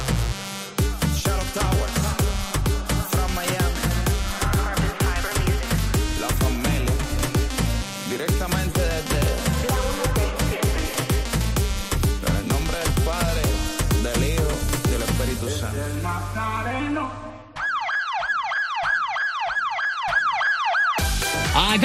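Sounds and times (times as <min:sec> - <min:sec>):
loud music: 0:00.0 - 0:21.8
phone app notification alarm warbling like a siren: 0:17.6 - 0:21.2.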